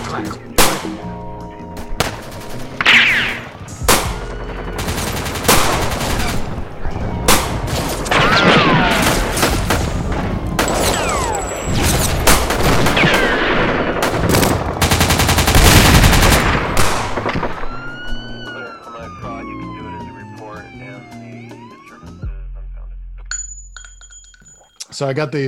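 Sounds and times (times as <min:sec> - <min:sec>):
speech: 0:00.1 - 0:01.3, 0:25.0 - 0:25.4
gunshot sound effects from big and small guns: 0:00.6 - 0:01.1, 0:02.0 - 0:06.6, 0:07.2 - 0:18.1
heavier booming blasts: 0:05.4 - 0:18.0.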